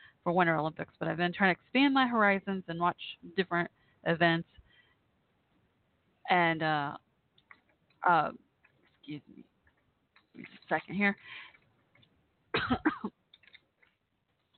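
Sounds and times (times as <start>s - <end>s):
speech: 0.2s - 4.6s, 6.3s - 7.0s, 8.0s - 8.4s, 9.1s - 9.5s, 10.4s - 11.5s, 12.6s - 13.2s
person coughing from asthma: 12.6s - 13.1s.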